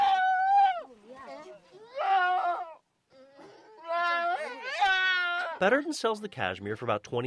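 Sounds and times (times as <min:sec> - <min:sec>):
goat making softer whimpering sounds: 0:00.0 - 0:05.6
goat bleating in distress while combed for cashmere in a yurt in Mongolia: 0:01.8 - 0:02.8, 0:03.8 - 0:05.6
speech: 0:05.6 - 0:07.2.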